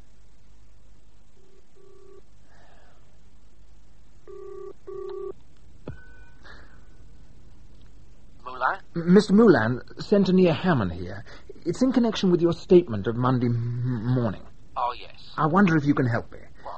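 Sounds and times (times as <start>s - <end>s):
click on the telephone line: 4.9s - 5.3s
brief ringing tone on the telephone line: 5.9s - 6.9s
speech: 9.0s - 16.5s.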